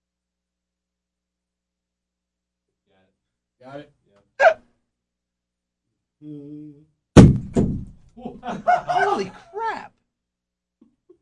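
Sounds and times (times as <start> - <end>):
speech: 3.6 - 4.6, 6.2 - 6.9, 8.2 - 10.0
low vocal murmur: 6.2 - 6.9
30-pound dumbbell hitting the floor: 7.2 - 8.0
laughter: 8.2 - 9.7.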